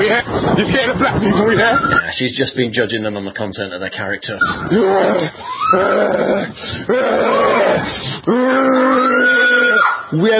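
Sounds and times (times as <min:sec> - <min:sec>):
speech: 0:00.0 - 0:10.3
person growling and snarling like a rabid dog: 0:04.7 - 0:09.0.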